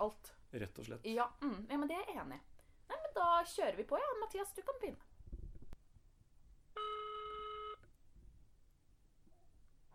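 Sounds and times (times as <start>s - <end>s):
speech: 0.0s - 5.1s
ringback tone of an outgoing phone call: 6.8s - 7.9s.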